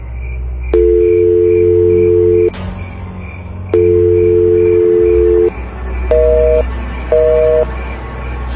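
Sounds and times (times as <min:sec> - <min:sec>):
telephone line tones from a call failing because the phone is switched off: 0:00.8 - 0:02.5, 0:03.8 - 0:05.5, 0:06.1 - 0:07.7.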